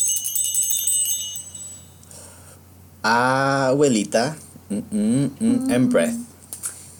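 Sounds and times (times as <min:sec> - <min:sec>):
bright high metallic chime ringing: 0:00.0 - 0:02.4
speech: 0:03.0 - 0:06.3.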